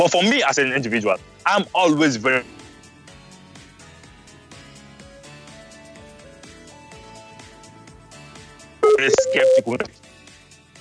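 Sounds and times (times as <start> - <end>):
speech: 0.0 - 2.6, 9.0 - 10.0
phone line electronic dialing tone: 8.8 - 9.8
garbled clipped voice fragments from a breaking phone call: 8.8 - 9.9.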